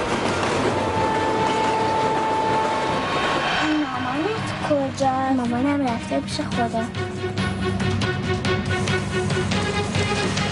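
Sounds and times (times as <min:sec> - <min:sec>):
train running on rails at speed: 0:00.0 - 0:10.4
thin sustained whine of a train: 0:01.8 - 0:05.3
speech: 0:05.4 - 0:08.0.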